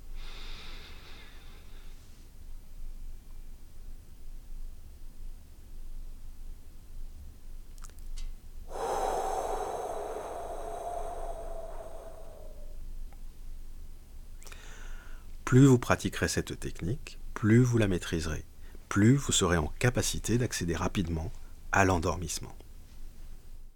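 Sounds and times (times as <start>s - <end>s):
loud drawn-out exhale through the mouth with slight whistle: 0.2s - 2.0s, 8.7s - 12.8s
person inhaling in 4-7-8 breathing exercise: 0.2s - 2.0s, 8.7s - 12.8s, 14.4s - 15.3s
speech: 15.5s - 22.6s.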